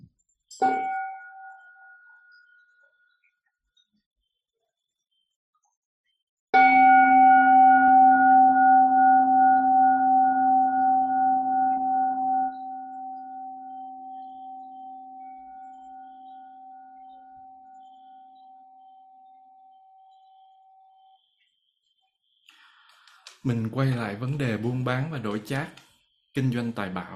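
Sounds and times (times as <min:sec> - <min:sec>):
speech: 0:00.6 - 0:00.8, 0:23.5 - 0:25.8, 0:26.4 - 0:27.1
mindfulness bell struck: 0:06.6 - 0:17.6.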